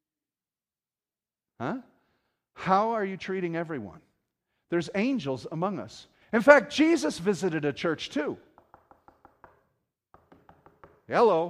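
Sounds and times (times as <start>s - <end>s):
speech: 1.6s - 1.9s, 2.6s - 4.1s, 4.7s - 8.5s, 11.1s - 11.4s
knocking on a door: 8.6s - 11.1s.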